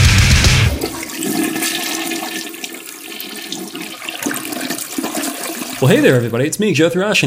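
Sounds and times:
toilet flushing: 0.5 - 6.6
speech: 5.8 - 7.2.

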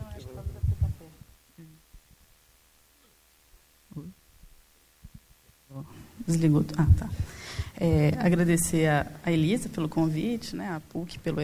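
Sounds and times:
voice: 0.0 - 1.8
low throbbing microphone feedback hum at an event: 0.0 - 2.2, 6.3 - 10.4
speech: 6.3 - 11.4.

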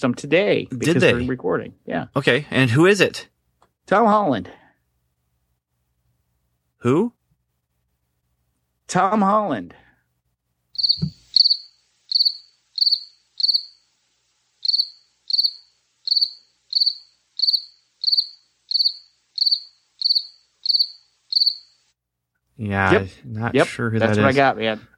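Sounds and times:
speech: 0.0 - 3.3, 3.9 - 4.6, 6.8 - 7.2, 8.9 - 9.8, 22.6 - 24.9
cricket chirping: 10.8 - 21.9
low thump: 10.9 - 11.2.

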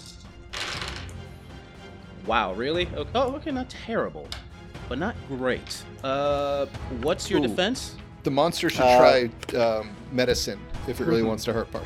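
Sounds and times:
die tumbling across a tabletop during a tabletop role-playing game: 0.6 - 1.2
speech: 2.3 - 11.8.

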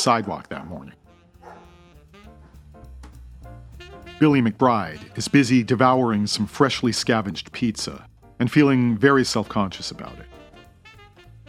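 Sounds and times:
speech: 0.0 - 1.0, 4.2 - 10.3
dog barking at night in a parking lot in Santa Monica: 0.0 - 1.8
steady dense low sound: 0.0 - 11.4.

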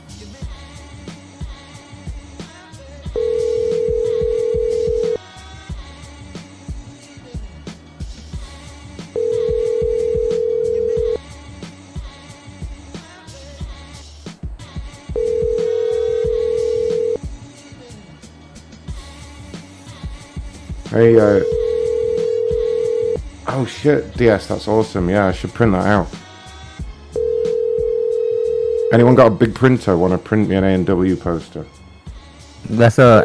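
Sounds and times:
telephone ringing: 3.2 - 5.2, 9.2 - 11.2, 15.2 - 17.2, 21.2 - 23.2, 27.2 - 29.2
speech: 21.0 - 21.5, 23.6 - 26.2, 28.9 - 31.8, 32.7 - 33.2.

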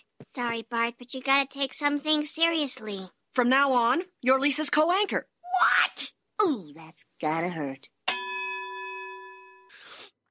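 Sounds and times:
speech: 0.4 - 5.3, 6.4 - 7.9
single bright bell ding: 8.1 - 9.7.

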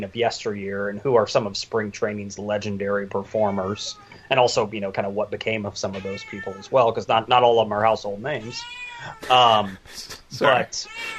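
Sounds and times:
speech: 0.0 - 11.1
pet cat meowing: 5.9 - 6.7, 8.4 - 9.4, 10.4 - 11.1
short higher cat squeak: 6.0 - 6.6, 8.5 - 9.2, 10.8 - 11.1.

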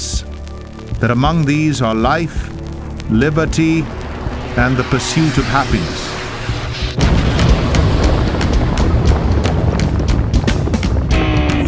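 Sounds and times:
speech: 1.0 - 6.0
rocket launch roar: 1.8 - 11.1.

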